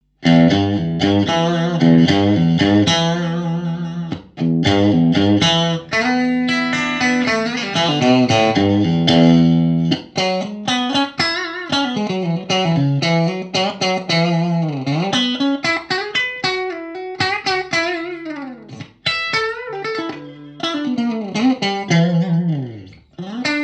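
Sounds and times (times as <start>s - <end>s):
clean electric guitar on bridge pickup of a 56 Strat: 0.0s - 23.6s.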